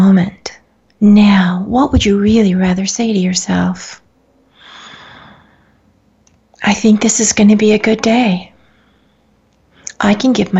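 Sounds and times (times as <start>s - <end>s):
speech: 1.0s - 4.0s, 6.6s - 8.5s, 10.0s - 10.5s
deep airy indrawn breath: 4.5s - 5.9s.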